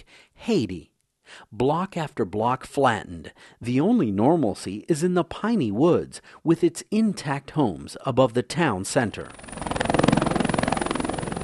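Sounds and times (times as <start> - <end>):
speech: 0.0 - 9.6
Air Force helicopters delivering food after an earthquake: 9.3 - 11.4.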